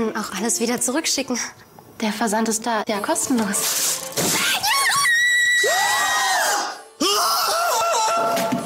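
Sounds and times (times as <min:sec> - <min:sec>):
speech: 0:00.2 - 0:04.0
high-pitched screams of joy: 0:04.4 - 0:08.6.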